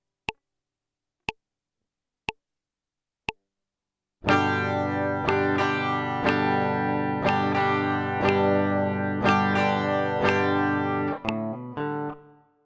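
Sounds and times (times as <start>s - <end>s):
guitar intro melody: 4.2s - 12.5s.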